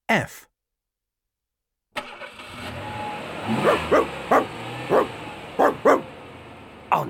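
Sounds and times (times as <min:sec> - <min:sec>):
speech: 0:00.1 - 0:00.5, 0:03.5 - 0:05.1
car engine and road noise: 0:02.0 - 0:07.0
dog barking in a car: 0:03.5 - 0:06.2.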